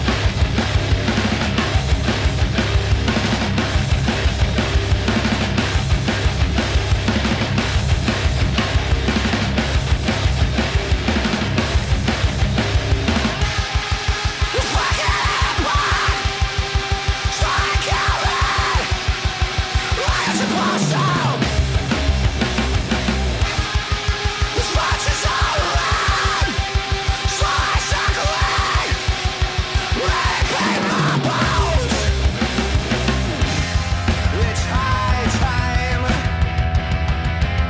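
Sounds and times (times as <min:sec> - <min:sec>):
dense distorted wall of guitars in loud hard live band music: 0:00.0 - 0:37.6
fast pounding drums in loud hard live band music: 0:00.0 - 0:37.6
shouted yelling vocals in loud hard live band music: 0:14.6 - 0:16.3, 0:17.3 - 0:19.0, 0:19.9 - 0:21.4, 0:24.6 - 0:29.1, 0:29.9 - 0:31.9.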